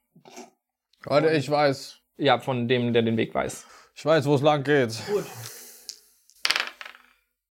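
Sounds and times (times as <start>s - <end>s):
speech: 0.2s - 5.6s
dice clattering onto a hard surface: 5.9s - 7.2s.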